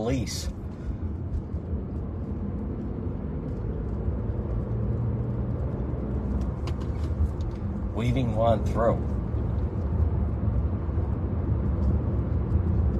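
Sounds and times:
fire truck heavy engine drone driving past: 0:00.0 - 0:12.9
low road noise: 0:00.0 - 0:12.9
speech: 0:00.1 - 0:00.6, 0:08.0 - 0:09.2.

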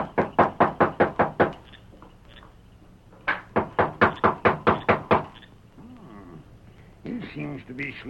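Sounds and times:
knocking on a door at night: 0:00.0 - 0:01.6, 0:03.3 - 0:05.4
speech: 0:07.6 - 0:08.0.

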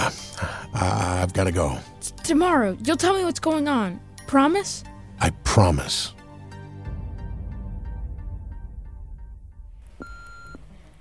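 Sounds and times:
speech: 0:00.8 - 0:06.2
answering machine or voicemail beep: 0:09.9 - 0:10.7.

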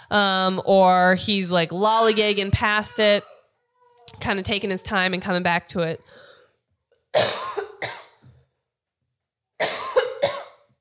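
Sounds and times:
speech: 0:00.1 - 0:03.4, 0:04.1 - 0:06.3, 0:07.1 - 0:07.4
person coughing: 0:07.2 - 0:08.3, 0:09.6 - 0:10.7.

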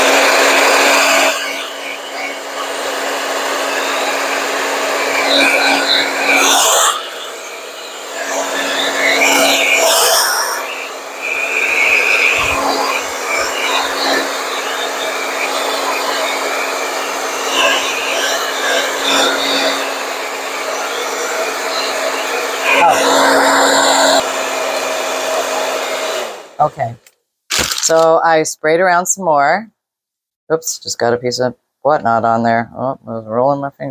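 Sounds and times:
hair dryer blowing: 0:00.0 - 0:26.7
speech: 0:27.9 - 0:29.8, 0:30.5 - 0:33.8.

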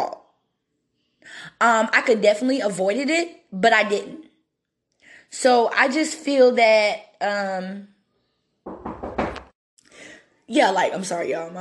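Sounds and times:
speech: 0:01.3 - 0:04.3, 0:05.3 - 0:07.9, 0:10.5 - 0:11.6
firm knocks on a door: 0:08.7 - 0:09.5.

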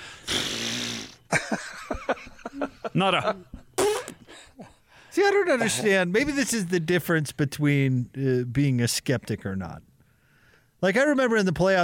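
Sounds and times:
person blowing nose with a loud honk: 0:00.0 - 0:01.3, 0:03.8 - 0:04.2
people laughing: 0:01.3 - 0:06.6
people chatting: 0:02.9 - 0:03.5, 0:05.1 - 0:09.8, 0:10.8 - 0:11.8
speech: 0:03.0 - 0:03.6, 0:05.2 - 0:09.9, 0:10.8 - 0:11.8.

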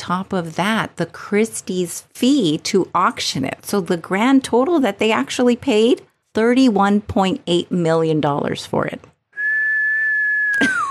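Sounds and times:
speech: 0:00.0 - 0:09.1, 0:10.6 - 0:10.8
person whistling in amazement: 0:09.3 - 0:10.8.

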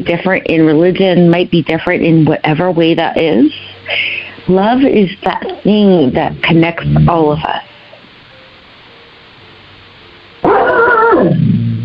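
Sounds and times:
speech: 0:00.0 - 0:07.7, 0:11.2 - 0:11.4
dog whimpering bark: 0:10.4 - 0:11.4.

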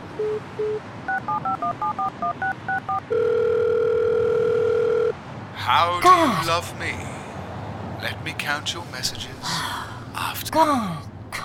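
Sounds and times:
speech: 0:00.2 - 0:03.8, 0:05.6 - 0:07.2, 0:08.0 - 0:11.1
cell phone keypad dialing tones: 0:00.2 - 0:05.1.

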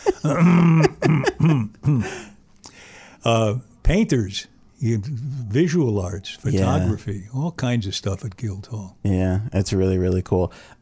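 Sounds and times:
person clearing throat: 0:00.1 - 0:02.2
speech: 0:00.2 - 0:01.2, 0:04.1 - 0:10.8.

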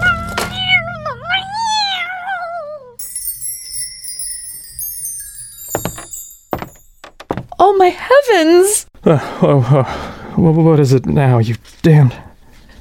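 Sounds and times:
cat yowling in pain: 0:00.0 - 0:03.0
dull thuds: 0:05.7 - 0:07.6
speech: 0:07.9 - 0:12.3.

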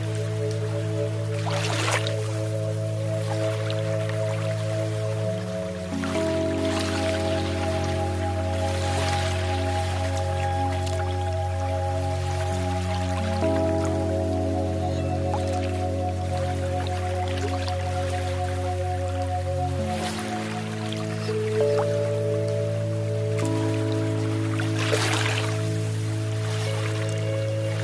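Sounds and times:
calm meditation music drone: 0:00.0 - 0:27.8
soft watery splashes and drips of lake waves: 0:00.0 - 0:27.8.

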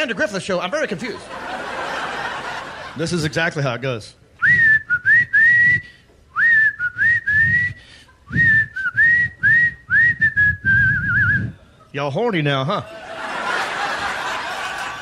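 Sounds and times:
speech: 0:00.0 - 0:01.6, 0:03.0 - 0:04.6, 0:11.9 - 0:13.0
laughter: 0:01.0 - 0:03.5, 0:12.8 - 0:15.0
person whistling a bouncy theme-song melody: 0:04.4 - 0:11.5.

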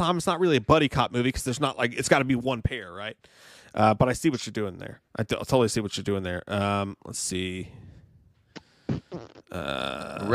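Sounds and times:
speech: 0:00.0 - 0:07.9, 0:09.1 - 0:10.3
short sputtering mouth pops: 0:08.5 - 0:10.3
loud buzzing raspberry blown with the lips: 0:08.6 - 0:10.3.

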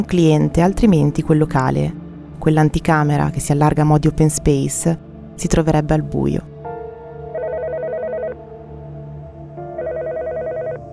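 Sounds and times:
speech: 0:00.0 - 0:06.5
telephone ringing: 0:07.4 - 0:08.4, 0:09.8 - 0:10.8.

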